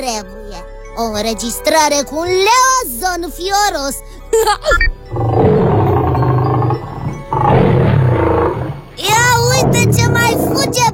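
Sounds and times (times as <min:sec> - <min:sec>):
speech: 0:00.0 - 0:04.9
recorded roar of a fierce beast: 0:05.1 - 0:10.9.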